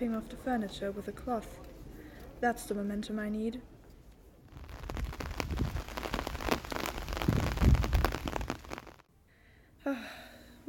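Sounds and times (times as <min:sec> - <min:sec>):
speech: 0:00.0 - 0:01.8, 0:02.4 - 0:03.7
low rumble: 0:04.5 - 0:09.0
steady rain pattering onto hard surfaces outdoors in a city: 0:04.5 - 0:09.1.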